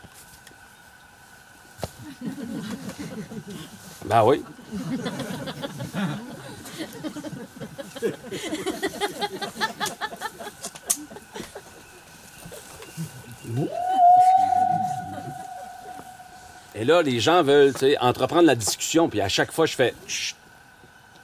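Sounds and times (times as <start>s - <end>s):
speech: 2.0s - 6.3s, 7.0s - 9.5s, 16.8s - 20.4s
laughter: 2.0s - 11.8s, 14.4s - 16.3s
human voice imitating a whale call with a rising moaning tone: 13.5s - 16.6s.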